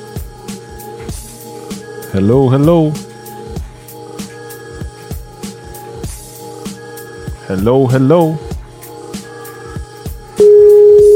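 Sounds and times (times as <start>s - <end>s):
speech: 2.1s - 3.1s, 7.5s - 8.4s
telephone ringing tone through the handset on an overseas call: 10.4s - 11.1s.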